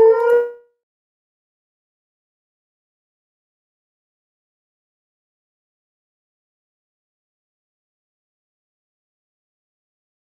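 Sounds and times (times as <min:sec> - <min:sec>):
puppy howling: 0:00.0 - 0:00.6.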